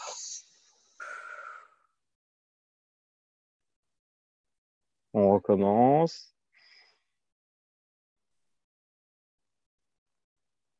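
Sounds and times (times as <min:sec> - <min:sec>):
deep breath in and out during a relaxation exercise: 0:00.0 - 0:02.0, 0:06.6 - 0:07.2
speech: 0:05.2 - 0:06.4.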